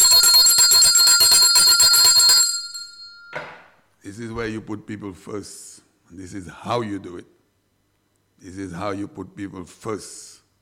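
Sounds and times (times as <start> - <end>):
bright bell ringing rapidly: 0.0 - 3.4
speech: 4.3 - 7.4, 8.4 - 10.3.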